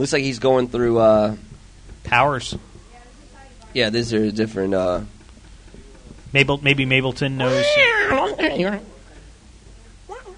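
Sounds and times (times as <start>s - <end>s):
speech: 0.0s - 2.7s, 3.7s - 5.2s, 6.3s - 8.9s
voice imitating robot droid beeps: 7.4s - 8.8s.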